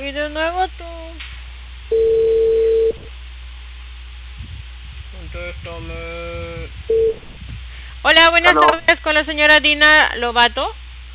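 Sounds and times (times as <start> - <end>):
low hum: 0.0 - 11.1
speech: 0.2 - 0.8, 8.3 - 10.8
telephone tone while placing a call: 1.9 - 3.1.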